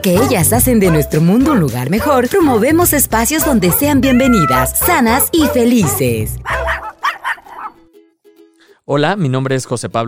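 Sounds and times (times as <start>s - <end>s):
speech: 0.0s - 6.7s, 8.9s - 10.0s
dog whining high: 4.0s - 4.7s, 6.4s - 7.8s
dog barking: 6.4s - 7.9s.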